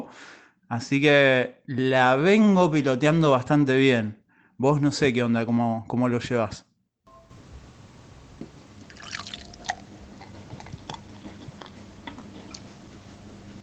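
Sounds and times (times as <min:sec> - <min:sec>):
speech: 0:00.0 - 0:06.7
liquid pouring and fizzing into a glass: 0:08.8 - 0:09.9
liquid splash: 0:08.9 - 0:09.7.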